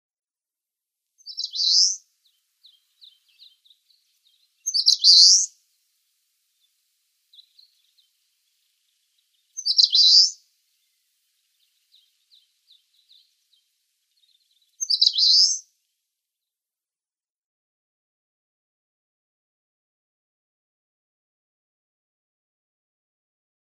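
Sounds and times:
Eastern Crowned Warbler singing: 1.2 - 5.6, 6.5 - 15.7.

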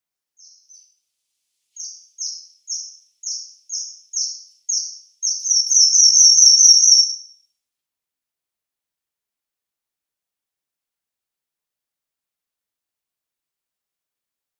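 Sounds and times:
Red Avadavat calls: 1.8 - 7.3.

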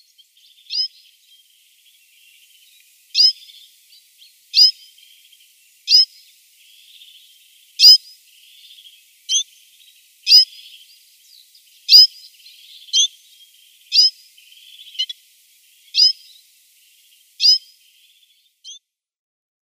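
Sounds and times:
citril finch high-pitched calls: 0.6 - 1.0, 3.1 - 3.6, 4.5 - 4.9, 5.9 - 6.1, 7.8 - 9.5, 10.3 - 10.8, 11.9 - 13.2, 13.9 - 15.1, 15.9 - 16.4, 17.4 - 17.8.

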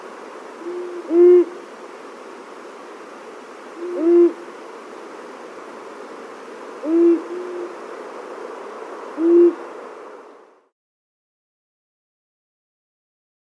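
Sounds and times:
steady hiss: 0.0 - 10.7
male long-eared owl giving low soft display hoots: 0.6 - 1.7, 3.8 - 4.5, 6.8 - 7.8, 9.1 - 9.7.

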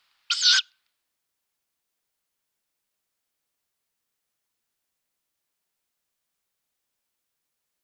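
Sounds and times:
Downy tawny owl chick making a breathy hissing screech: 0.3 - 0.7.

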